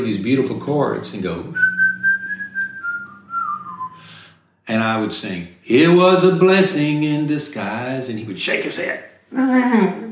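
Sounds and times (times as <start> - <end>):
speech: 0.0 - 1.7, 4.7 - 10.1
soft low hum: 0.0 - 8.4
person whistling a slow song melody: 1.5 - 4.3.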